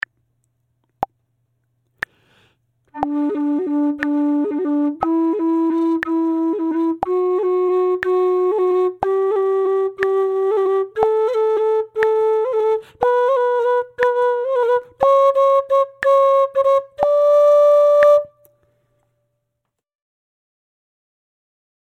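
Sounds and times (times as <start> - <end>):
Irish flute playing regular syncopated rolls: 2.9 - 18.6.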